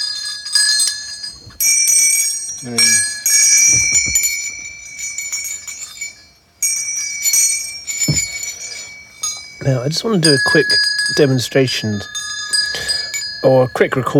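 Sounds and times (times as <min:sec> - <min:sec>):
four small tuned bells with arbitrary tuning being rung: 0:00.0 - 0:14.1
speech: 0:02.6 - 0:03.1, 0:09.6 - 0:12.2, 0:13.4 - 0:14.1.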